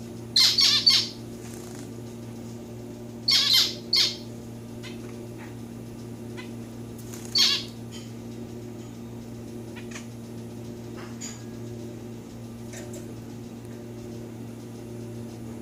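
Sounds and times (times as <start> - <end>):
steady low hum: 0.0 - 15.5
domestic society finch calls: 0.4 - 1.8, 3.3 - 5.0, 7.1 - 7.8.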